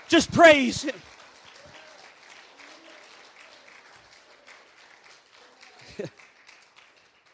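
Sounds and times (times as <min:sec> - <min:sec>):
audience clapping hands in praise: 0:00.0 - 0:07.3
speech: 0:00.1 - 0:01.1, 0:06.0 - 0:06.2.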